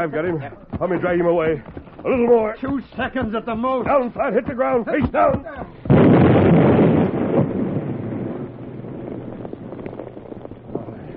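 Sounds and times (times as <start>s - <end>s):
speech: 0.0s - 6.8s
lingering low rumble with scattered crackles: 5.7s - 11.1s
dynamite explosion: 5.9s - 11.1s.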